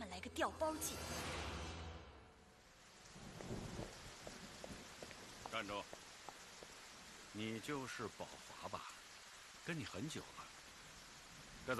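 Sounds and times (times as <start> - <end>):
speech: 0.3 - 1.2, 5.5 - 6.0, 7.4 - 9.0, 9.6 - 10.5
steady rain pouring down outside: 0.8 - 11.7
drips and splashes on hard surfaces: 2.6 - 11.7
deep rumbling thunder: 3.1 - 5.3.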